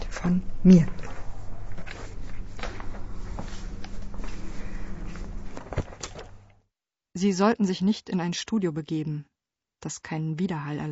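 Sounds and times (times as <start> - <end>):
faint footsteps in a corridor: 0.0 - 6.5
steady low hum: 0.0 - 6.6
speech: 0.2 - 1.1, 7.2 - 10.9.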